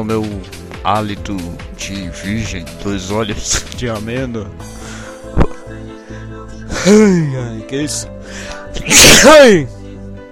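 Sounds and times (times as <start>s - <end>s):
speech: 0.0s - 4.8s, 6.8s - 9.8s
loud sneeze from someone with a cold: 8.9s - 9.4s.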